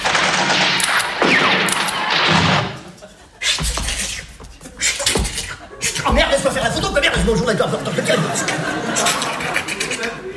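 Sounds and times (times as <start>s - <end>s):
gunfire from troops in ranks firing at will: 0.0s - 2.9s
laughter: 2.7s - 10.3s
speech: 7.3s - 9.1s.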